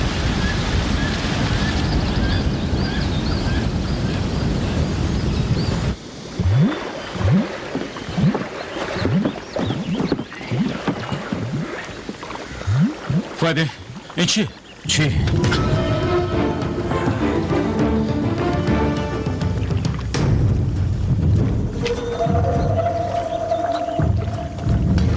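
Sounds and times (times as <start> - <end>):
rushing water: 0.0 - 25.1
speech: 13.5 - 15.6.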